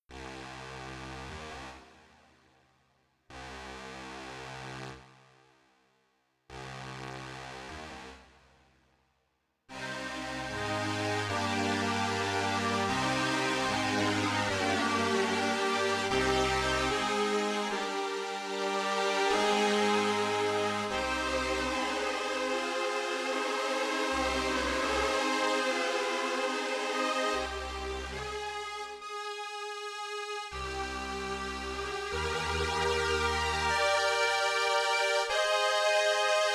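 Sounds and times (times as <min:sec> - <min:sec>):
strings with space: 0:09.7 - 0:36.5.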